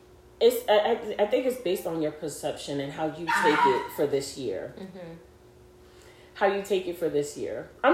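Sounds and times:
faint hum: 0.0s - 7.9s
speech: 0.4s - 5.3s, 6.4s - 7.9s
male dog barking and yipping: 3.3s - 4.1s.

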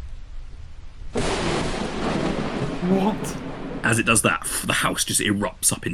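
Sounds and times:
thunder crack from a lightning strike: 1.2s - 4.2s
speech: 2.8s - 5.9s.

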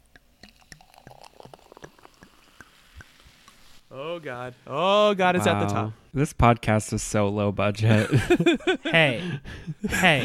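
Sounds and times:
champagne poured into a glass: 0.0s - 3.8s
champagne fizzing and popping in a glass: 0.0s - 3.9s
speech: 3.9s - 10.2s
laughter: 7.8s - 10.2s.

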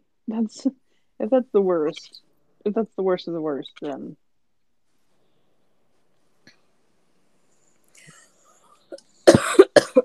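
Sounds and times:
speech: 0.3s - 4.2s
person coughing: 8.9s - 10.0s.

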